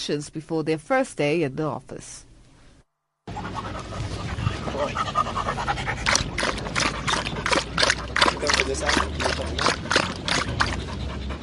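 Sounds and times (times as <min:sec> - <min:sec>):
speech: 0:00.0 - 0:02.3, 0:04.8 - 0:05.6, 0:08.6 - 0:10.2
sniffer dog panting: 0:03.3 - 0:11.4
sniffer dog lapping water: 0:04.9 - 0:11.4.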